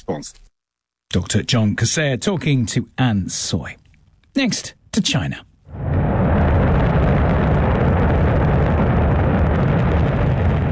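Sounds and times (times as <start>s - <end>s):
speech: 0.0s - 0.5s, 1.1s - 3.8s, 4.4s - 5.8s
rocket lifting off from Inner Mongolia: 5.7s - 10.6s.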